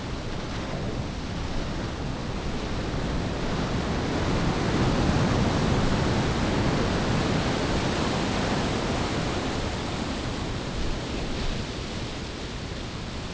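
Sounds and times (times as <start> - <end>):
water: 0.0 - 13.3.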